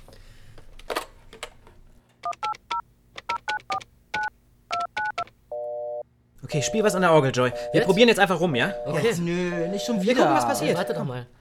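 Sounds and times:
telephone keypad touch-tone dialing beeps: 3.4s - 6.0s, 6.6s - 11.1s
speech: 6.5s - 11.4s
multi-tone chime: 6.6s - 11.1s.

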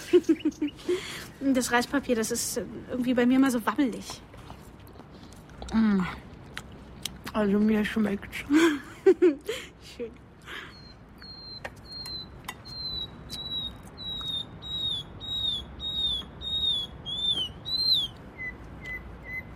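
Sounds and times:
speech: 0.1s - 4.4s, 5.7s - 6.2s, 7.4s - 10.2s
nightingale singing: 10.8s - 19.5s.

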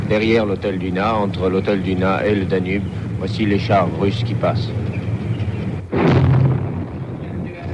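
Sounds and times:
speech: 0.1s - 4.9s
machine-gun fire on a street in Budapest: 5.9s - 7.6s.

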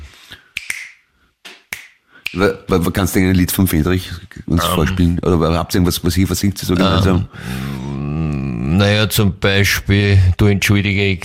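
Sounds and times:
finger snaps: 0.3s - 2.4s
speech: 2.3s - 7.8s, 8.8s - 11.2s.

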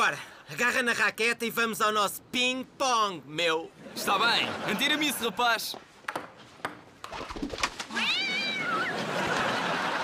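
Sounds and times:
speech: 0.0s - 5.9s
laughter: 3.8s - 5.7s, 8.3s - 10.0s
cat meowing in a dubbed television comedy: 7.9s - 9.0s.

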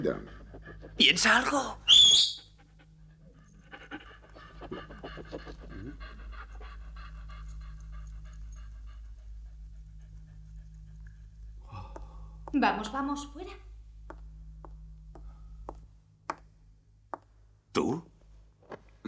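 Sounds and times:
speech: 0.0s - 0.4s, 1.0s - 2.4s, 12.5s - 13.6s, 17.8s - 18.1s
dogs panting: 0.0s - 13.3s
low constant hum: 0.0s - 19.0s.

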